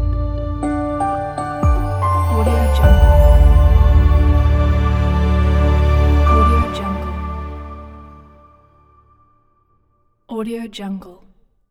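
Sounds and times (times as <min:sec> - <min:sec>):
elegant corporate logo jingle: 0:00.1 - 0:08.9.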